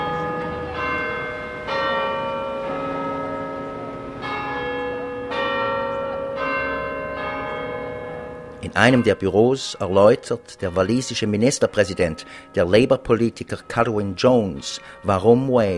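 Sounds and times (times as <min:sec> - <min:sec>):
clock tower bell ringing a chime: 0:00.0 - 0:15.7
speech: 0:08.6 - 0:15.7.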